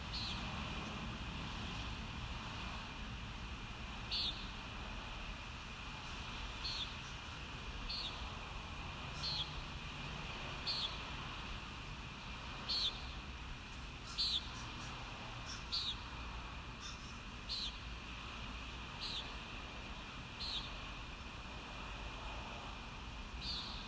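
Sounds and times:
low rumbling background noise: 0:00.0 - 0:23.8
steady hum: 0:00.0 - 0:23.8
common nighthawk buzzy nasal peent calls: 0:00.1 - 0:00.5, 0:04.1 - 0:04.5, 0:06.6 - 0:08.2, 0:09.1 - 0:09.6, 0:14.0 - 0:16.0, 0:16.8 - 0:17.8, 0:19.0 - 0:19.4, 0:20.4 - 0:20.8, 0:23.4 - 0:23.8.

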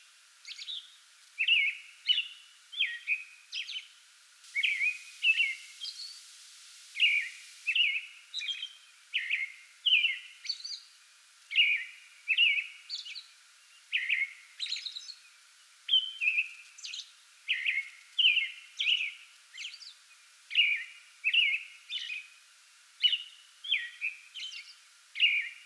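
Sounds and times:
American robin singing caroled whistled phrases and squeaky notes before dawn: 0:01.4 - 0:03.9, 0:04.5 - 0:06.2, 0:07.0 - 0:10.8, 0:11.5 - 0:13.2, 0:13.9 - 0:15.2, 0:15.9 - 0:22.2, 0:23.0 - 0:25.6.

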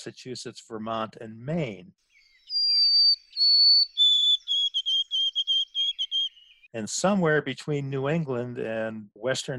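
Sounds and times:
speech: 0:00.0 - 0:02.1, 0:06.8 - 0:09.5
White-throated Sparrow eastern triplet song in New England: 0:02.1 - 0:06.7.

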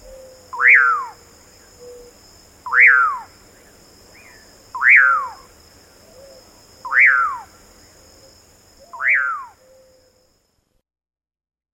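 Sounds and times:
common pauraque rising-then-falling whistled calls: 0:00.0 - 0:01.2, 0:02.7 - 0:03.3, 0:04.8 - 0:05.5, 0:06.9 - 0:07.5, 0:08.8 - 0:09.9.

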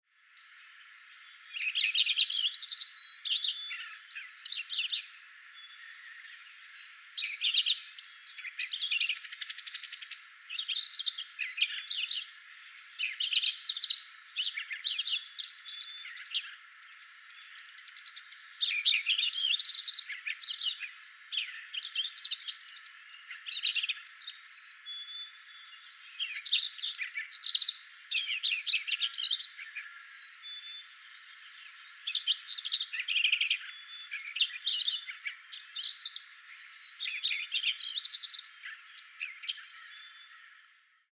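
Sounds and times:
Lincoln's sparrow calling: 0:00.4 - 0:40.7.

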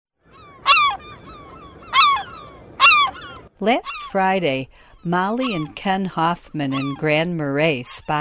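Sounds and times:
Slaty-backed gull giving loud harsh falling calls: 0:00.2 - 0:04.2, 0:06.6 - 0:07.2
speech: 0:03.6 - 0:08.2.

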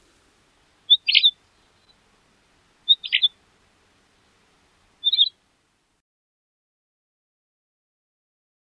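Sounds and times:
pine grosbeak calls: 0:00.0 - 0:05.4.

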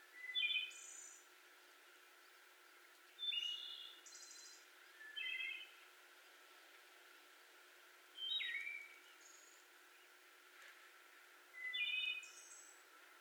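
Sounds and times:
Wood Thrush song with fluted notes and buzzy trill: 0:00.0 - 0:06.4, 0:08.1 - 0:10.3, 0:11.5 - 0:13.1.

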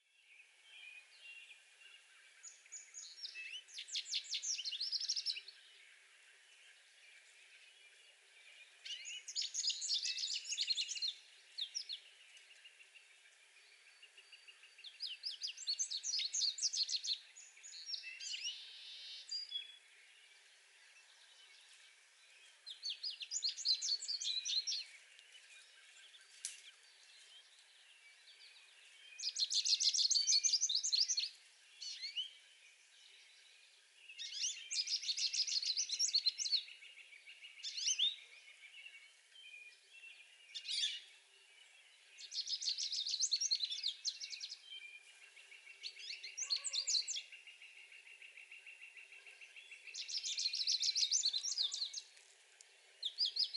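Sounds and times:
American goldfinch songs: 0:00.0 - 0:53.5.

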